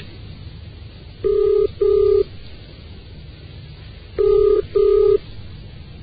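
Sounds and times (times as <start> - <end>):
telephone ringing tone: 1.2 - 2.3, 4.2 - 5.2.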